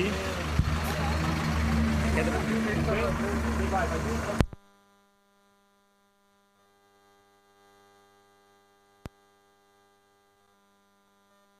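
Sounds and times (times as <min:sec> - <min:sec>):
bus engine idling: 0:00.0 - 0:04.4
voices murmuring: 0:00.0 - 0:04.6
speech: 0:02.2 - 0:04.4.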